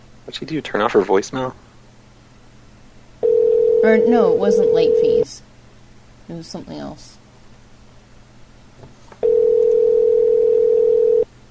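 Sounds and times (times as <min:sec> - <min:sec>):
faint noise: 0:00.0 - 0:11.4
speech: 0:00.3 - 0:01.7, 0:03.8 - 0:05.5, 0:06.3 - 0:07.2
phone line ringing tone: 0:03.2 - 0:05.2, 0:09.2 - 0:11.3.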